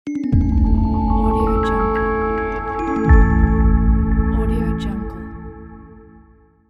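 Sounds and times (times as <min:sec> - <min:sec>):
soft bells logo: 0:00.1 - 0:05.3.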